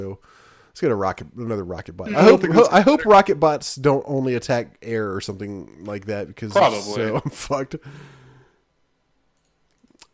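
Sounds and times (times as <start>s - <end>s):
speech: 0.0s - 8.2s
soft breathy exhale: 0.2s - 0.7s, 7.8s - 8.6s
laughter: 2.1s - 3.1s, 6.6s - 7.5s.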